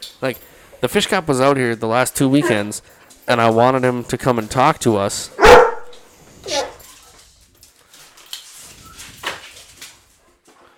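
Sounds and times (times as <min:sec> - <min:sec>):
speech: 0:00.2 - 0:05.6
dog barking: 0:05.4 - 0:06.8.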